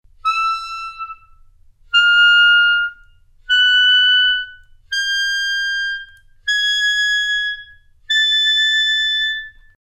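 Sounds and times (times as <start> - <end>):
E-flat clarinet: 0.1 - 9.8.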